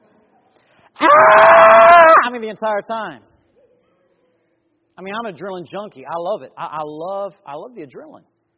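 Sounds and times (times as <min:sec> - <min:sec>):
man screaming high-pitched imitating a woman on a roller coaster: 0:01.0 - 0:02.3
speech: 0:02.3 - 0:03.3, 0:05.0 - 0:08.3.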